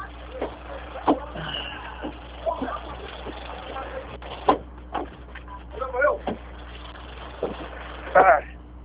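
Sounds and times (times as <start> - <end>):
voices: 0.0 - 8.6
bus engine rumble: 0.0 - 8.8
street noise: 0.0 - 8.8.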